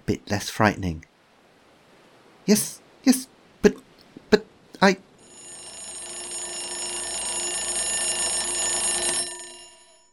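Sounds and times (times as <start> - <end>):
speech: 0.1 - 1.1, 2.5 - 3.8, 4.8 - 5.1
shrill alarm clock bell ringing on a bedside table: 5.2 - 10.1.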